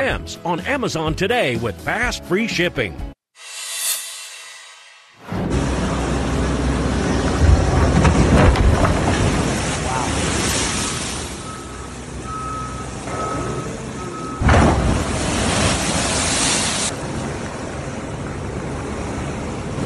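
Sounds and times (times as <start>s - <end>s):
speech: 0.1s - 3.1s
big ocean waves crashing against the coast: 5.2s - 19.8s
faint steady beep: 11.4s - 14.5s.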